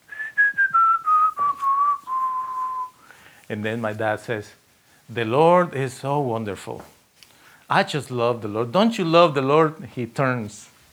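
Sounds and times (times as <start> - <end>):
man whistling a slow melody: 0.0 - 3.1
breaths between phrases: 3.0 - 3.5, 7.2 - 7.7
speech: 3.5 - 7.0, 7.7 - 10.7.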